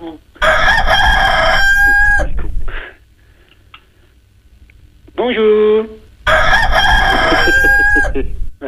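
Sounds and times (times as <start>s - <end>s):
rooster crowing: 0.4s - 2.5s, 6.3s - 8.4s.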